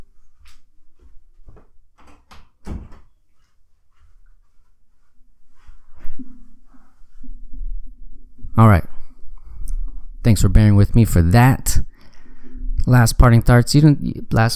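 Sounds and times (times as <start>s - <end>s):
door being shut with knocks and clunks: 2.1s - 3.1s
speech: 8.6s - 8.9s, 10.2s - 11.9s, 12.9s - 14.5s.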